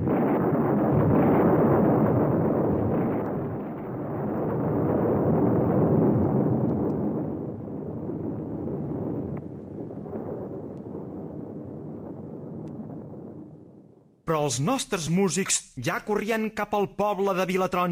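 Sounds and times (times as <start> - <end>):
heavy rolling thunder: 0.0 - 14.2
speech: 14.3 - 17.9.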